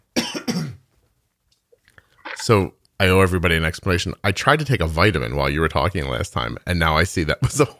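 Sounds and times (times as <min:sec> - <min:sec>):
harsh coughs: 0:00.2 - 0:00.8
speech: 0:02.4 - 0:07.7.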